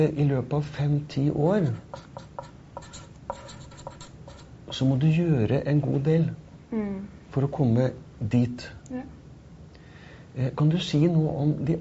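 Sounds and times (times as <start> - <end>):
speech: 0.0 - 2.2, 4.7 - 9.2, 10.4 - 11.7
pen scratching on paper drawing a ladder: 1.7 - 4.5.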